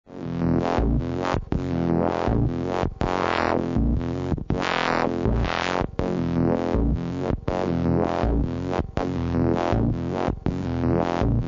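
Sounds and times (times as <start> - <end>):
sequencer with filter sweep: 0.1 - 11.4.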